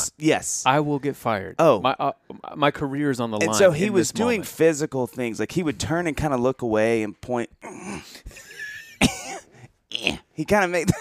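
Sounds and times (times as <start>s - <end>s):
speech: 0.2s - 9.2s, 9.9s - 10.9s
person coughing: 9.0s - 10.2s.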